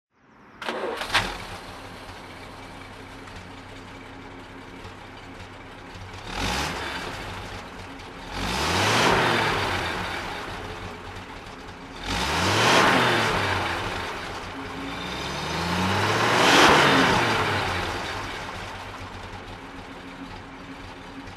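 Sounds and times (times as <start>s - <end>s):
1950 Bentley Mk VI Park Ward Foursome Coupe engine throttle: 0.6s - 21.3s.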